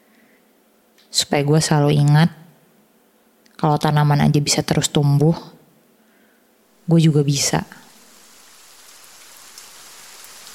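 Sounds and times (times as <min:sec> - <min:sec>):
speech: 0:01.2 - 0:02.4, 0:03.6 - 0:05.6, 0:06.9 - 0:07.8
steady rain falling: 0:06.8 - 0:10.5.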